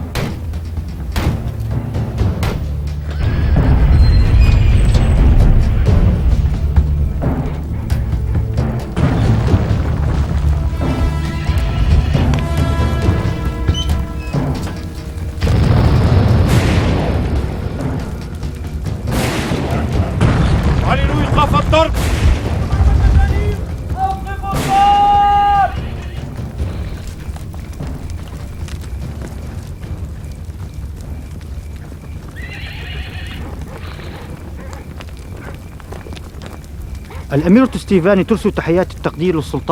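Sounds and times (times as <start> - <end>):
chaotic mix of rumbling and ringing tones: 0.0 - 24.7
heavy booming crashes of mangonel catapult bombardment: 0.0 - 31.6
speech: 37.4 - 39.7.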